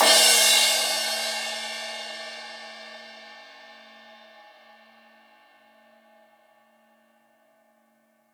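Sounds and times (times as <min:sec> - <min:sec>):
drum kit crash cymbal hit: 0:00.0 - 0:04.7.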